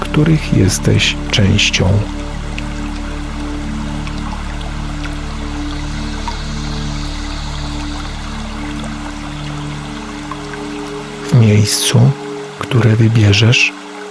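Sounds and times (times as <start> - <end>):
small stream trickling and splashing over rock ledges: 0.0 - 14.0
speech: 0.2 - 2.3, 11.4 - 13.8.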